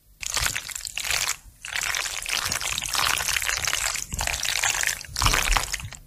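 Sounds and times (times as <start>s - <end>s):
cold macaroni and cheese stirred in a pot for a slimy monster effect: 0.2s - 6.0s.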